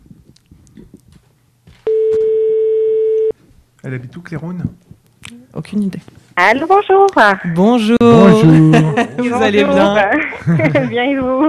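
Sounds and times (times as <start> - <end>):
telephone line tone while a call is being placed: 1.9 - 3.3
speech: 3.8 - 11.4
laughter: 8.0 - 11.4.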